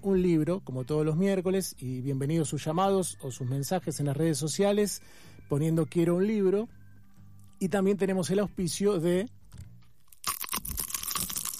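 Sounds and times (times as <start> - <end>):
speech: 0.0 - 6.8, 7.6 - 9.7
teeth biting into a crunchy churro: 10.0 - 11.5.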